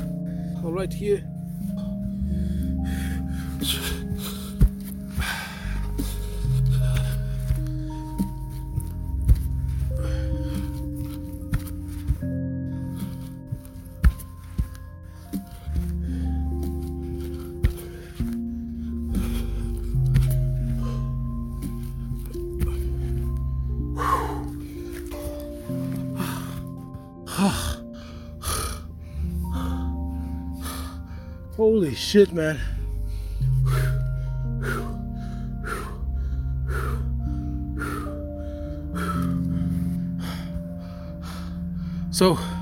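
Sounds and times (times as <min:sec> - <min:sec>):
steady low musical backdrop: 0:00.0 - 0:42.6
speech: 0:00.6 - 0:01.3, 0:03.6 - 0:04.0, 0:32.1 - 0:32.8, 0:42.2 - 0:42.6
person panting and gasping while doing burpees: 0:01.8 - 0:31.4, 0:32.7 - 0:42.6
thumps and shuffling from dropping and jumping during burpees: 0:03.5 - 0:26.8.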